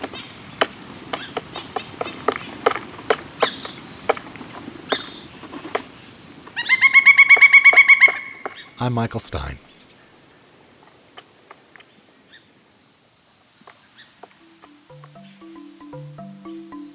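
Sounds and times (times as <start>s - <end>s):
woodpecker giving ringing harmonic notes: 3.6s - 12.6s
woodpecker sharp irregular clicks and taps: 3.8s - 10.2s
speech: 8.8s - 9.7s.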